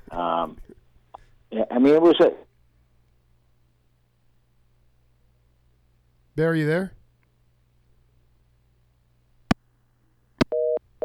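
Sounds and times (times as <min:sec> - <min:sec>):
speech: 0:00.2 - 0:00.8, 0:01.5 - 0:02.4, 0:06.4 - 0:07.0
phone line disconnecting clicks: 0:10.4 - 0:11.0
two-tone telephone busy signal: 0:10.5 - 0:11.0.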